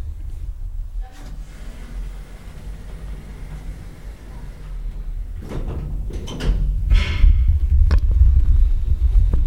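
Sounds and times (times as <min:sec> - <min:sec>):
elevator car rumbling as it starts moving: 0:00.0 - 0:08.7
elevator doors sliding shut with a mechanical scrape: 0:00.9 - 0:07.6.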